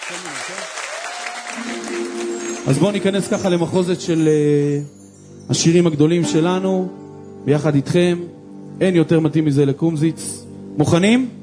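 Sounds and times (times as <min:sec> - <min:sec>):
audience applauding musicians on stage at a singalong concert: 0:00.0 - 0:03.8
speech: 0:00.1 - 0:11.4.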